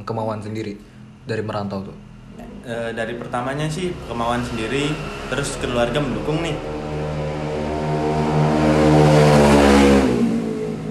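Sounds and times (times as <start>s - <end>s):
speech: 0.0s - 6.8s
motorcycle engine passing in an industrial area: 2.2s - 10.8s.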